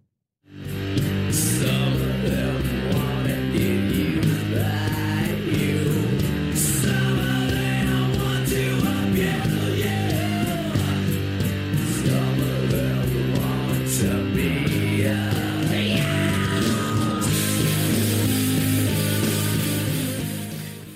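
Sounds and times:
driving drums: 0:00.5 - 0:20.9
heavy rock cover of a pop song: 0:00.5 - 0:20.9
thick distorted guitars: 0:00.5 - 0:20.9
low sustained bass line: 0:00.6 - 0:20.9.

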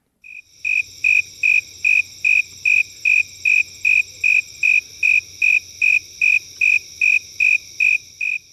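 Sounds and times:
snowy tree cricket chirping: 0:00.2 - 0:08.5.

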